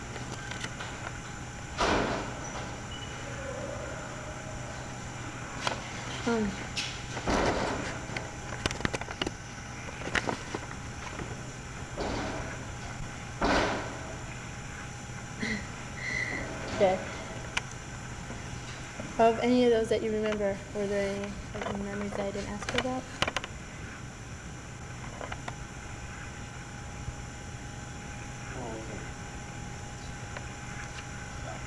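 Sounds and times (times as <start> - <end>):
steady low hum: 0.0 - 31.6
door thudding shut: 1.8 - 2.4, 13.4 - 14.0
speech: 6.3 - 6.9, 19.2 - 23.3.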